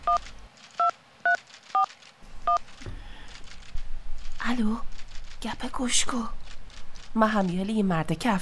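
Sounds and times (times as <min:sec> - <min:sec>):
dual-tone telephone keypad beeps: 0:00.0 - 0:00.2
faint hum: 0:00.0 - 0:08.3
speech: 0:00.2 - 0:00.4, 0:04.5 - 0:06.4, 0:07.1 - 0:08.3.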